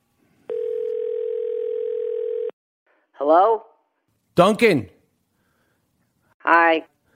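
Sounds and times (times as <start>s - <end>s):
telephone dial tone while placing a phone call: 0.5s - 2.6s
speech: 3.2s - 3.7s, 4.4s - 4.9s, 6.5s - 6.9s.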